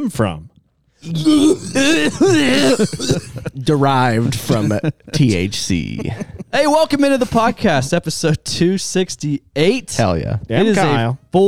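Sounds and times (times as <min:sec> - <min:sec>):
speech: 0:00.0 - 0:11.4
person clearing throat: 0:01.1 - 0:03.6, 0:04.5 - 0:04.8
short cough: 0:01.3 - 0:03.5
laughter: 0:01.7 - 0:07.6.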